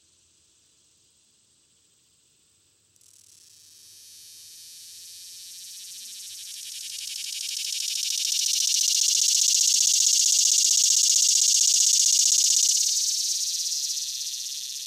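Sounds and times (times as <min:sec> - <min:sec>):
swamp cicada song, a shrill throbbing buzz: 0:03.0 - 0:14.8.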